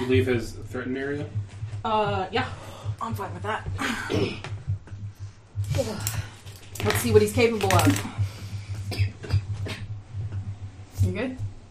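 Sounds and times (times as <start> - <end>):
low steady hum: 0.0 - 11.6
speech: 0.1 - 4.5, 5.7 - 8.3, 11.0 - 11.5
person with long COVID coughing: 3.8 - 4.6, 8.9 - 9.8.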